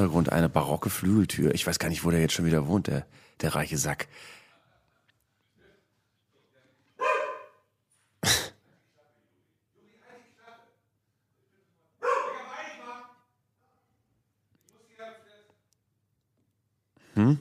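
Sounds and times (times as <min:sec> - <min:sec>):
speech: 0:00.0 - 0:04.4, 0:17.2 - 0:17.3
dog barking excitedly: 0:07.0 - 0:07.6, 0:12.0 - 0:12.5.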